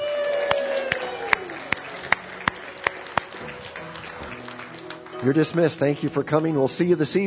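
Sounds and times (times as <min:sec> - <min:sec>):
audience cheering: 0:00.0 - 0:05.8
audience clapping in a steady rhythm: 0:00.0 - 0:06.6
speech: 0:05.2 - 0:07.2.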